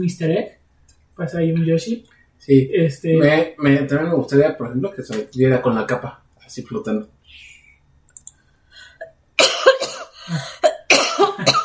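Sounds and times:
speech: 0:00.0 - 0:00.6, 0:01.2 - 0:07.5, 0:10.3 - 0:10.5
faint clicks: 0:08.0 - 0:08.4
person coughing hard: 0:09.4 - 0:11.6.

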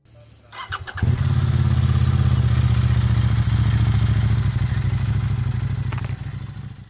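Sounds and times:
799 cc parallel-twin motorcycle engine idling: 0:00.1 - 0:06.8
motorcycle starter turning: 0:00.5 - 0:01.3.

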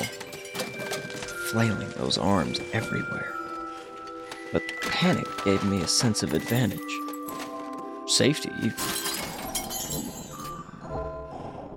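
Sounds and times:
glass jar smashed over a creature's head: 0:00.0 - 0:02.8, 0:04.8 - 0:07.6, 0:08.6 - 0:10.8
glass shards and debris tinkling and rattling: 0:00.0 - 0:07.8, 0:08.6 - 0:10.8
speech: 0:01.5 - 0:03.4, 0:04.5 - 0:07.0, 0:08.1 - 0:09.0.

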